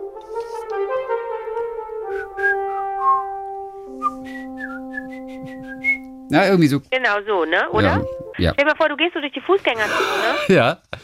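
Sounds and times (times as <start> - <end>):
man whistling an opera melody: 2.2 - 3.4, 4.0 - 6.3
sustained droning low accompaniment tones: 3.9 - 6.8
speech: 6.3 - 10.9
laughter: 9.8 - 10.7.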